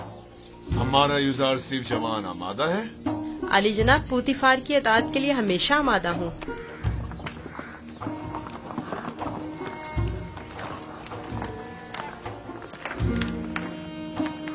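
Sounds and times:
speech: 0.8s - 6.7s
horse hooves clip-clopping while drawing a buggy: 5.1s - 14.5s.

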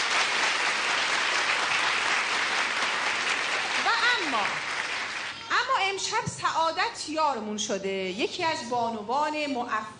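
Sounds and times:
audience applause: 0.0s - 5.4s
speech: 4.3s - 4.7s, 5.8s - 9.9s.

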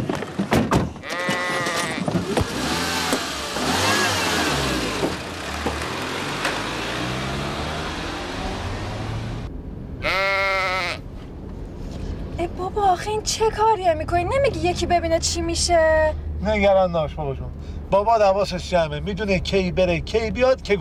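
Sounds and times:
steady engine rumble: 0.0s - 20.7s
sheep bleating: 1.0s - 2.1s, 10.0s - 11.0s
speech: 13.2s - 20.7s.

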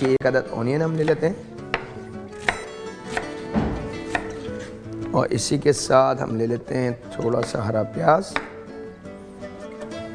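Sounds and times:
speech: 0.0s - 1.5s, 5.2s - 8.5s
knife chopping bell pepper into cubes on a board: 1.7s - 4.4s, 8.3s - 8.6s.

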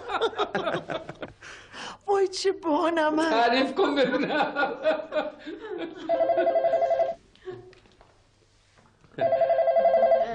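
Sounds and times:
speech: 0.2s - 1.6s, 2.2s - 7.1s, 9.2s - 9.6s
telephone ringing in trilling bursts: 6.1s - 7.2s, 9.2s - 10.3s.

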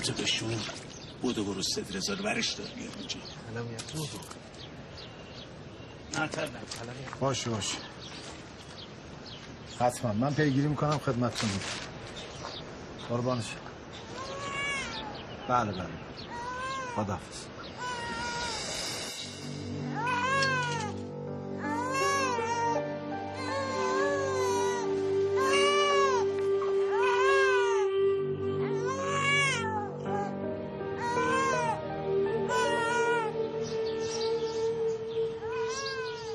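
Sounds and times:
speech: 0.0s - 4.6s, 6.1s - 8.2s, 9.8s - 11.9s, 13.1s - 13.7s, 15.5s - 16.2s, 17.0s - 17.5s
baby crying: 14.1s - 15.1s, 16.3s - 17.1s, 17.8s - 18.7s, 19.9s - 33.7s, 34.6s - 36.3s.

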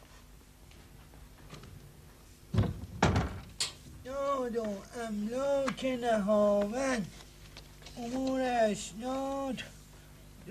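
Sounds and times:
door being closed: 2.5s - 3.6s
speech: 4.6s - 7.2s, 8.0s - 9.7s.

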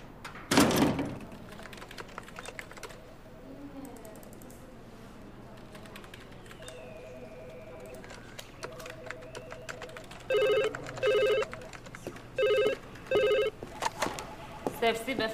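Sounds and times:
faint voices: 1.2s - 15.3s
telephone ringing with short electronic trills: 7.0s - 13.6s.

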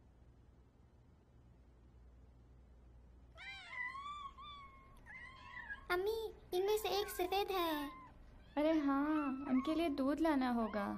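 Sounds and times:
low hum: 0.0s - 10.9s
cat meowing: 3.4s - 5.9s, 7.0s - 10.9s
speech: 6.0s - 8.0s, 8.6s - 10.9s.

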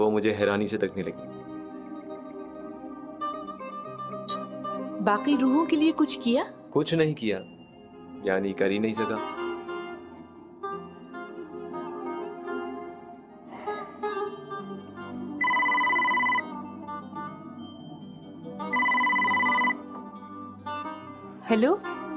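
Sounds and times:
soft continuous musical background: 0.0s - 22.1s
speech: 0.2s - 1.4s, 5.0s - 7.5s, 8.2s - 9.4s
telephone ringing with a steady electronic trill: 15.4s - 16.6s, 18.7s - 19.9s.

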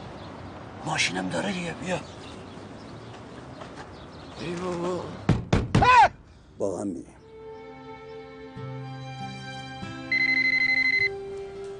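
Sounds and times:
speech: 0.8s - 2.2s, 4.4s - 5.2s, 6.6s - 7.2s
telephone ringing with a quick electronic trill: 10.1s - 11.1s.

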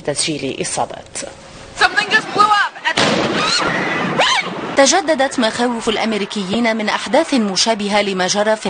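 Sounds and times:
speech: 0.0s - 8.6s
bomb blast at a marathon finish line: 3.0s - 4.8s.

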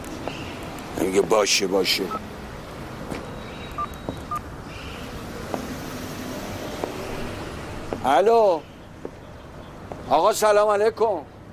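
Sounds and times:
speech: 1.0s - 2.3s, 8.0s - 8.7s, 10.1s - 11.3s
mobile phone keypad tones from dialing: 3.7s - 4.4s.

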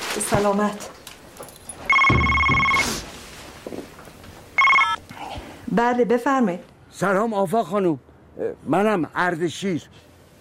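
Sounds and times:
speech: 0.2s - 1.0s, 5.7s - 10.1s
telephone ringing with an electronic ring: 1.9s - 2.9s, 4.6s - 5.0s.

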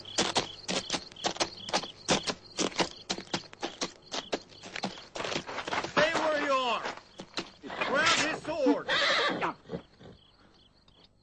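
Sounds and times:
horse hooves clip-clopping at a walking pace: 0.0s - 8.6s
faint high-pitched chirping hum: 0.0s - 11.2s.

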